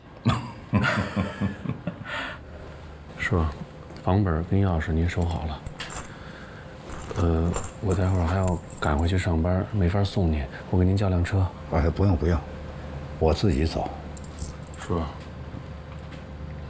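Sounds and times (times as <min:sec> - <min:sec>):
laughter: 0:00.3 - 0:02.2
people talking: 0:03.2 - 0:05.6, 0:07.2 - 0:12.5, 0:13.2 - 0:14.0, 0:14.8 - 0:15.2
house keys jingling as they are handed over: 0:05.2 - 0:09.1, 0:14.2 - 0:15.0.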